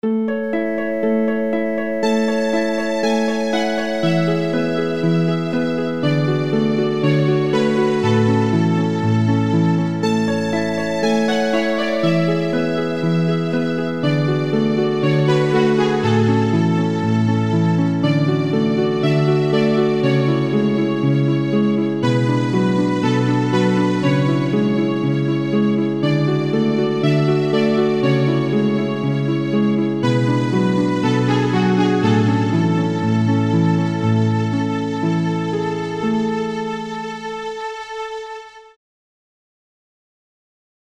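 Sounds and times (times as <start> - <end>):
harp in a violin and harp duo: 0.1 - 38.0
violin in a violin and harp duo: 0.3 - 38.8.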